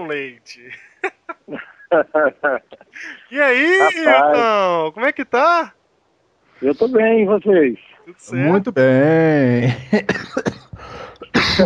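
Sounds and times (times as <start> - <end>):
speech: 0.0 - 0.9, 1.5 - 5.8, 6.6 - 10.6, 11.3 - 11.6
laughter: 0.6 - 4.6, 8.4 - 11.6
person coughing: 1.5 - 4.4, 9.8 - 11.6.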